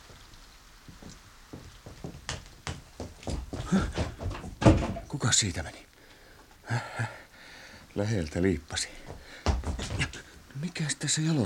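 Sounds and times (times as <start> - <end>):
wooden clunks and knocks of door handling: 0.9 - 5.2, 9.1 - 10.2
speech: 3.7 - 4.0, 5.2 - 5.9, 6.7 - 7.2, 8.0 - 9.5, 10.6 - 11.4
door being pushed open: 3.9 - 5.1.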